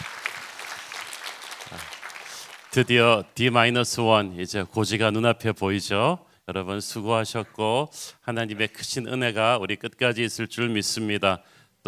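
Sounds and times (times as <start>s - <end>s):
church congregation applauding in thanks during a service: 0.0s - 3.3s
speech: 2.8s - 11.8s.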